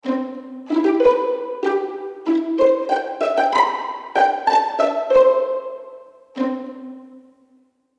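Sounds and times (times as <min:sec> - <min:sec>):
pizzicato violins: 0:00.0 - 0:07.6.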